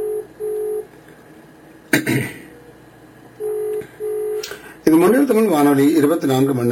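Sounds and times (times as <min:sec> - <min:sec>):
telephone ringback paired beeping tones: 0:00.0 - 0:00.9, 0:03.4 - 0:04.4
speech: 0:02.0 - 0:02.4, 0:04.9 - 0:06.7.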